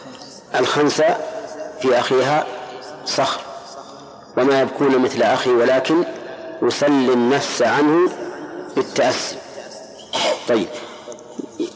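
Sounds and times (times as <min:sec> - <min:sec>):
low noise: 0:00.0 - 0:11.7
speech: 0:00.6 - 0:03.4, 0:04.4 - 0:09.4, 0:10.5 - 0:10.9
person sneezing: 0:10.1 - 0:11.7.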